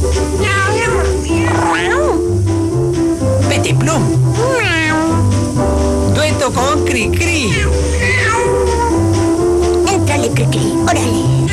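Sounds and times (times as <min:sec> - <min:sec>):
steady sustained musical background: 0:00.0 - 0:11.5
cat yowling: 0:00.4 - 0:02.3, 0:04.4 - 0:05.3, 0:07.4 - 0:09.0.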